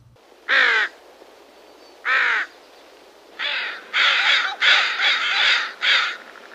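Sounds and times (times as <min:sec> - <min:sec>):
Pacific Northwest crow species cawing: 0:00.5 - 0:01.0, 0:02.0 - 0:02.5, 0:03.4 - 0:06.5.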